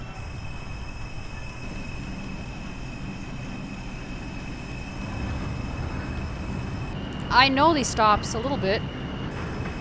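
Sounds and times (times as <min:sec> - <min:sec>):
dense rail roar of a subway train: 0:00.0 - 0:09.7
faint high whine of a subway train: 0:00.0 - 0:09.7
subway train running between stations on a Brooklyn-bound line: 0:00.0 - 0:09.7
speech: 0:07.4 - 0:09.0.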